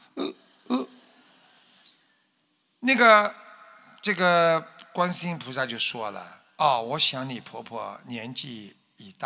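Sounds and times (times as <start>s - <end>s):
person hiccuping while talking: 0.1s - 0.9s
speech: 2.9s - 3.4s, 4.0s - 9.2s.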